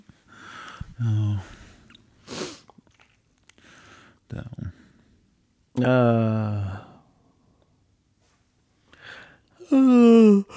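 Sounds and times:
speech: 0:01.0 - 0:01.6, 0:05.8 - 0:06.6
person yawning loudly with groaning: 0:09.6 - 0:10.5.

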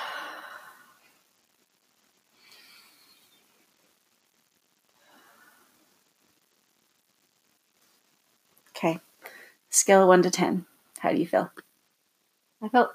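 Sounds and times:
slow deep breaths during a calming exercise: 0:00.0 - 0:01.2, 0:02.3 - 0:03.5, 0:04.9 - 0:05.9, 0:09.2 - 0:09.7
speech: 0:08.8 - 0:09.1, 0:09.7 - 0:11.7, 0:12.6 - 0:12.9.

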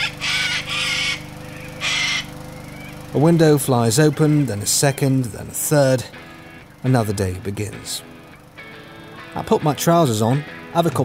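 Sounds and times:
parrot in a neighbouring garden squawking: 0:00.0 - 0:02.3
steady low hum: 0:00.0 - 0:09.4
lawnmower rumbling in a garden: 0:00.0 - 0:11.0
speech: 0:03.1 - 0:08.2, 0:09.4 - 0:11.0.

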